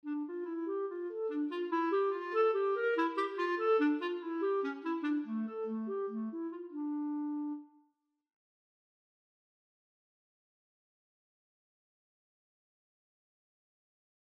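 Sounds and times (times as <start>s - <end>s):
clarinet: 0.0s - 7.9s.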